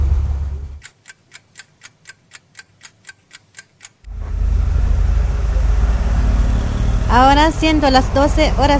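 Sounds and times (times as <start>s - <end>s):
vehicles idling in a traffic jam: 0.0s - 0.8s, 4.1s - 8.7s
even ticking: 0.8s - 4.2s
speech: 7.1s - 8.7s.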